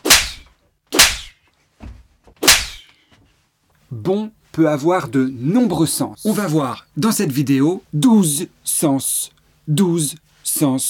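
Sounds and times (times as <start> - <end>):
loud sharp slaps: 0.0 - 1.4, 2.4 - 3.0
speech: 3.9 - 10.8.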